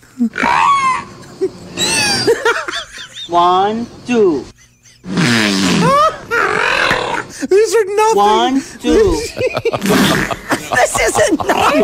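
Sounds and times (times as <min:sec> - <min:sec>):
speech: 0:00.2 - 0:00.6, 0:03.3 - 0:04.5, 0:07.7 - 0:11.8
whale moans and squeals: 0:00.2 - 0:01.1, 0:01.8 - 0:02.4, 0:05.8 - 0:07.3
laughter: 0:01.2 - 0:03.4, 0:04.5 - 0:06.7, 0:08.9 - 0:11.8.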